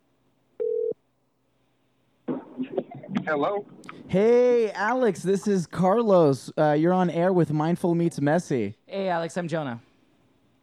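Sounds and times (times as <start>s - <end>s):
telephone ringback tone while placing call: 0.6s - 1.0s
speech: 3.3s - 9.9s.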